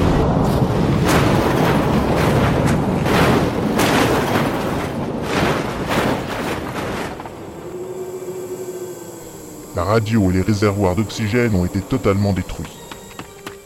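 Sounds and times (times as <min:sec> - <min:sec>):
loud explosion damaging an all-terrain vehicle on Mars: 0:00.0 - 0:07.6
sharp blasts and crackling bursts: 0:00.0 - 0:13.6
speech: 0:09.9 - 0:12.8.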